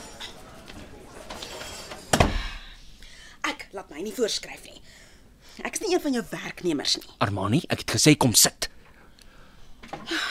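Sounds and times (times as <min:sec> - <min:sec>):
door shut behind someone entering a room: 0:02.1 - 0:02.6
speech: 0:03.9 - 0:04.9, 0:05.6 - 0:08.7.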